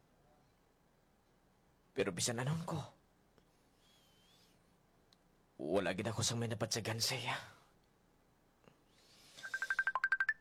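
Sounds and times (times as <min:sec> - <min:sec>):
speech: 0:02.0 - 0:03.0, 0:05.9 - 0:07.6
mobile phone ringing with an incoming call: 0:09.4 - 0:10.3.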